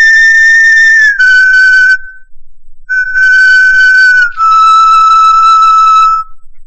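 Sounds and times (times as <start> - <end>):
9,000-year-old flute made of crane wing bone playing a short melody: 0.0 - 2.3, 2.9 - 6.4.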